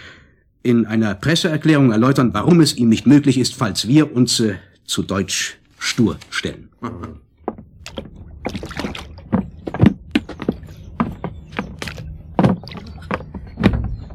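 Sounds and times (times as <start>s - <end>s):
speech: 0.6s - 7.3s
wooden thunks and knocks from oars and hull of a rowing boat on a lake: 7.4s - 14.1s
soft water splashes on a lake: 7.7s - 10.8s.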